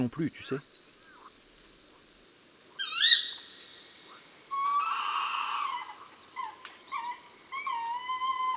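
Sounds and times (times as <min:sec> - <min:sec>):
speech: 0:00.0 - 0:00.7
tawny owl shrieking: 0:02.8 - 0:03.5, 0:04.5 - 0:08.5.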